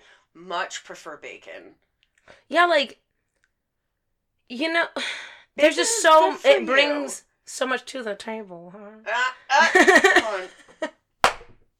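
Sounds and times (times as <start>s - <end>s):
speech: 0.4s - 3.0s, 4.5s - 10.9s
person laughing heartily: 9.5s - 10.7s
hand slapping a knee: 11.2s - 11.6s.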